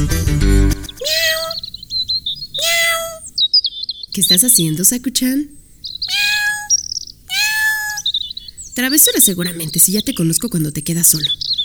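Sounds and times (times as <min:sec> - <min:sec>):
cat meowing: 0:00.9 - 0:03.4, 0:04.2 - 0:10.1
faint chirpy squeaks: 0:00.9 - 0:03.5, 0:04.2 - 0:11.6
speech: 0:04.2 - 0:05.6, 0:08.8 - 0:11.6.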